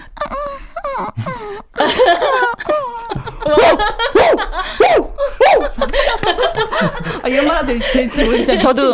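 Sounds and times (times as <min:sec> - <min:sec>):
laughter: 0:00.0 - 0:08.9
person imitating an injured puppy whimpering: 0:00.2 - 0:01.7
speech: 0:07.3 - 0:08.9.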